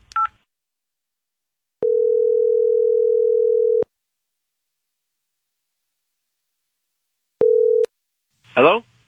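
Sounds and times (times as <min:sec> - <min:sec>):
outgoing call ringback tone to a cell phone: 0:01.8 - 0:03.8, 0:07.4 - 0:07.9
person speaking: 0:08.5 - 0:09.0.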